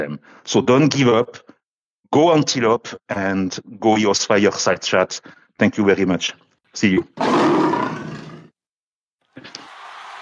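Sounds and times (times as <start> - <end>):
speech: 0.0 - 1.5, 2.1 - 8.0
lion roaring: 7.2 - 8.5.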